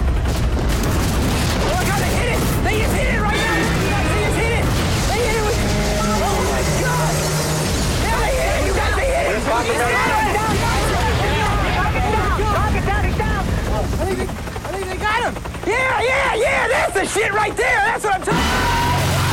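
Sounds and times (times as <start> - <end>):
explosions from a stealth bomber dropping bombs in a video game: 0.0 - 14.4
people shouting and talking loudly: 1.7 - 13.6, 14.6 - 19.3.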